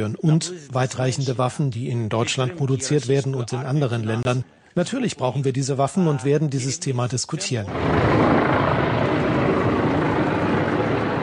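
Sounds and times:
speech: 0.0s - 9.0s
helicopters circling overhead during a state visit: 7.7s - 11.2s.

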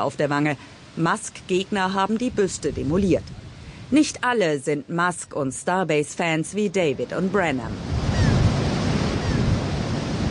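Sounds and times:
speech: 0.0s - 8.0s
low wind buffeting: 1.6s - 4.2s, 6.9s - 10.3s
surf washing onto a sea beach in front of a spaceport: 7.6s - 10.3s.

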